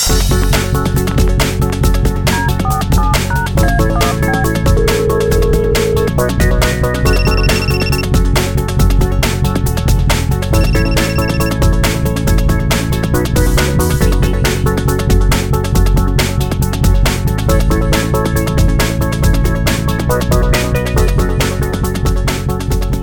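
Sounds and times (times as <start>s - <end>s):
loud steady music bed: 0.0s - 22.9s
telephone ringing tone while a radio studio phone call connects: 2.3s - 8.2s, 10.6s - 11.8s.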